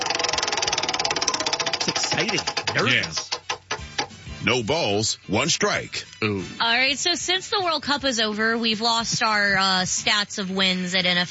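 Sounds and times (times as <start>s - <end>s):
prize wheel spinning with rapid even ticking: 0.0s - 4.2s
speech: 1.8s - 3.4s, 4.4s - 11.2s.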